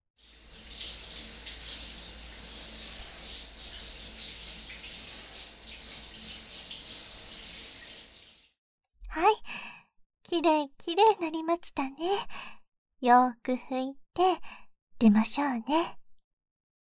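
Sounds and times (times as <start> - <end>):
running water pouring while a baby is rinsed in a bath: 0.1 - 8.5
speech: 10.4 - 16.0.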